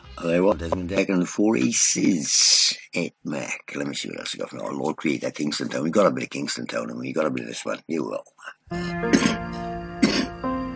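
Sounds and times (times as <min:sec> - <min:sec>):
speech: 0:00.2 - 0:09.7
person coughing: 0:09.1 - 0:10.4.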